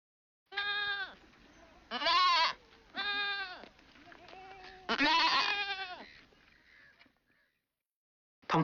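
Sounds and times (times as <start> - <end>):
goat bleating: 0.5 - 6.9.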